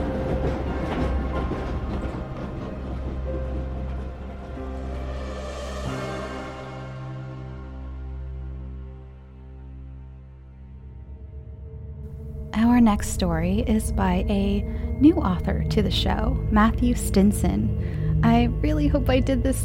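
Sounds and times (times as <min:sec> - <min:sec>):
train rumbling along rails: 0:00.0 - 0:07.1, 0:15.0 - 0:19.6
speech: 0:12.9 - 0:19.6.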